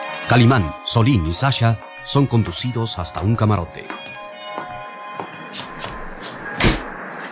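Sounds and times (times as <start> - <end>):
speech: 0.3 - 4.0
cabin door pulled shut with a solid loud thump: 6.5 - 6.9.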